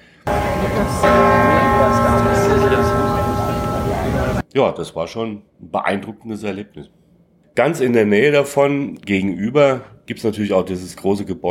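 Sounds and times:
murmuring voices: 0.3 - 4.4
original Liberty Bell struck and ringing: 0.3 - 4.4
speech: 0.8 - 1.2, 4.6 - 7.0, 7.6 - 11.4.

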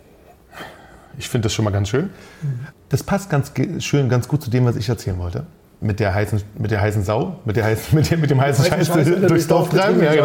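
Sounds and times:
speech: 1.2 - 10.2
person sniffing Spätburgunder Rosé wine from a glass: 2.2 - 2.8.

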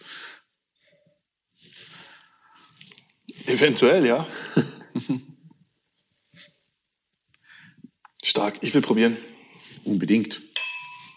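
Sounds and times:
speech: 3.5 - 5.3, 8.4 - 10.5
laughter: 4.3 - 5.4
glasses clinking in a toast: 10.6 - 11.1.

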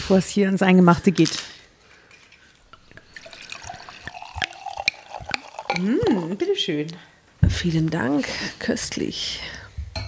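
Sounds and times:
speech: 0.1 - 1.6, 6.6 - 9.6
wine from a freshly opened bottle pouring into glasses: 2.1 - 6.6.

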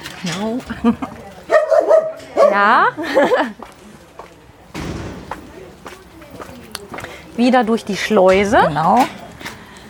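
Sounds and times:
speech: 0.2 - 1.3, 2.5 - 3.8, 7.4 - 9.2
laughter: 0.6 - 1.4, 2.9 - 3.6
door slamming in a reverberant indoor space: 4.7 - 6.0.

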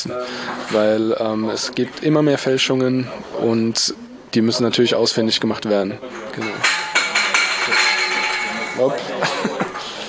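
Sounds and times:
speech: 0.0 - 6.8, 8.8 - 9.3
faint voices murmuring: 0.0 - 10.0
metal cutlery clinking as it is sorted: 6.1 - 9.9
laughter: 8.9 - 10.0.

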